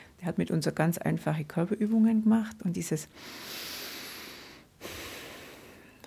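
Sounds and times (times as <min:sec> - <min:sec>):
speech: 0:00.2 - 0:03.8
voice imitating deep forceful yogic breathing: 0:03.2 - 0:06.0.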